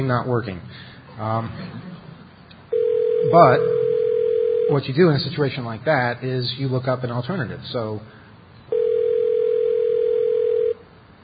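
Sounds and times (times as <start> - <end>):
speech: 0.0 - 1.9, 3.2 - 3.8, 4.7 - 8.2
telephone ringback tone heard through the receiver: 2.7 - 4.7, 8.7 - 10.8.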